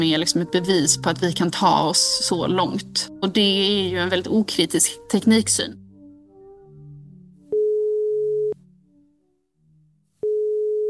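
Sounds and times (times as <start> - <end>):
speech: 0.0 - 5.8
soft music: 0.0 - 10.8
electronic ringback tones of an outgoing phone call: 7.5 - 8.6, 10.2 - 10.8.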